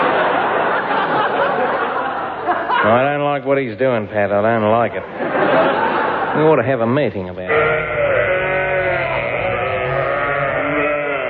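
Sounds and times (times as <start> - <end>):
laughter: 0.0 - 3.2, 5.0 - 6.6
speech: 2.9 - 7.9
flock of sheep bleating on an old recording: 7.5 - 11.2.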